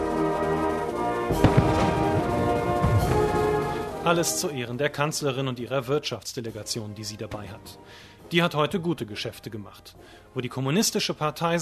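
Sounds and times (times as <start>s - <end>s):
brass band playing: 0.0s - 4.6s
speech: 1.3s - 1.6s, 4.1s - 11.5s
ceremonial cannon salute shots: 1.3s - 4.1s.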